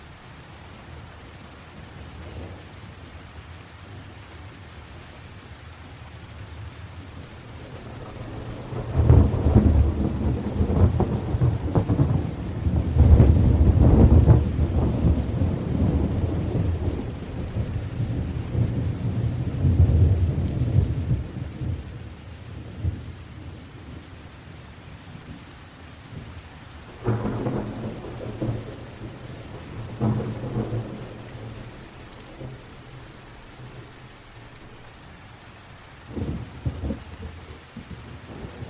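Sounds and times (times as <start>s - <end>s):
rain hissing in a gentle thunderstorm: 0.0s - 38.6s
low rumble of thunder: 7.5s - 24.1s, 26.0s - 35.1s, 35.8s - 38.6s.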